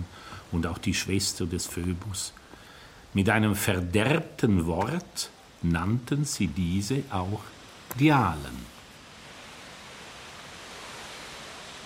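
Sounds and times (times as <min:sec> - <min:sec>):
speech: 0:00.5 - 0:02.4, 0:03.1 - 0:08.8
waterfall rushing: 0:07.1 - 0:11.8.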